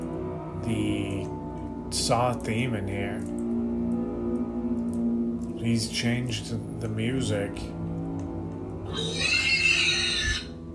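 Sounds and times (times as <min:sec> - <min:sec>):
steady low droning background: 0:00.0 - 0:09.2
speech: 0:00.7 - 0:01.0, 0:02.0 - 0:03.4, 0:05.6 - 0:07.8
high-pitched pig squeal sound effect in a haunted attraction: 0:08.9 - 0:10.6.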